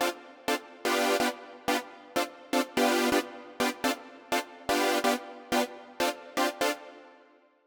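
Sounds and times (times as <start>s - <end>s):
nu disco synth music in D minor: 0.8s - 6.9s.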